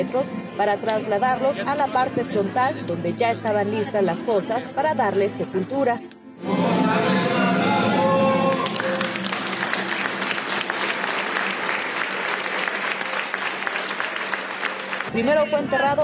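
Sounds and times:
speech: 0:00.0 - 0:07.4, 0:15.2 - 0:16.0
large crowd applauding at a burial: 0:07.4 - 0:15.2.

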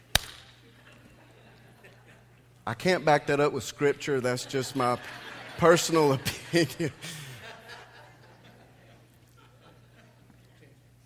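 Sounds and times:
open-hand slap: 0:00.1 - 0:00.6
laughter: 0:00.6 - 0:02.5, 0:04.0 - 0:11.0
speech: 0:02.6 - 0:07.2.

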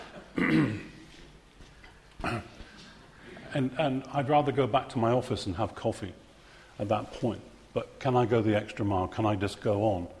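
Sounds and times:
low murmur of room noise: 0:00.0 - 0:10.1
audience member coughing: 0:00.1 - 0:01.1, 0:02.2 - 0:02.7
speech: 0:03.6 - 0:06.2, 0:06.8 - 0:10.1.

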